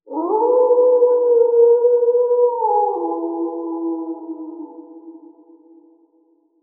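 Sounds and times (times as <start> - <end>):
wolf howling: 0.1 - 5.4.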